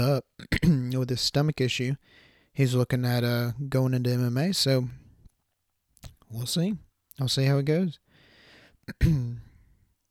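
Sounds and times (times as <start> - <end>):
speech: 0.0 - 5.0, 6.3 - 8.0, 8.9 - 9.5
throat clearing: 8.9 - 9.6.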